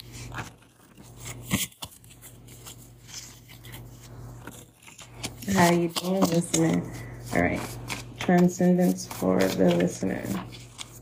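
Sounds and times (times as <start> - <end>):
deck of cards being shuffled: 0.0 - 10.9
low steady hum: 0.0 - 10.9
speech: 5.5 - 10.6.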